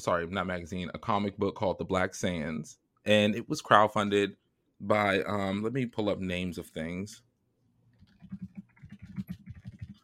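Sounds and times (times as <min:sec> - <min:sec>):
speech: 0:00.0 - 0:07.3
fingers typing on a computer keyboard: 0:08.1 - 0:10.0.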